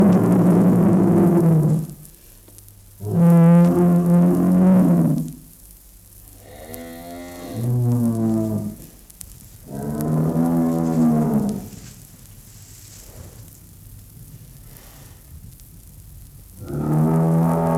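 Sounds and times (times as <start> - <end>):
bull mooing: 0.0 - 1.9, 3.0 - 5.4, 6.4 - 8.9, 9.7 - 11.9, 16.6 - 17.7.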